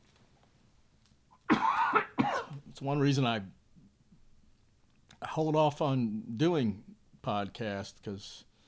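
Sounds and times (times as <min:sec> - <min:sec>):
harsh raspy cough: 0:01.5 - 0:02.6
speech: 0:02.8 - 0:03.6, 0:05.3 - 0:08.5.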